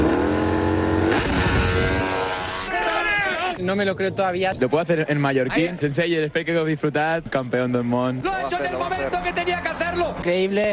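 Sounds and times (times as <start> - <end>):
engine revving hard at full throttle: 0.0 - 2.7
speech: 3.7 - 10.7.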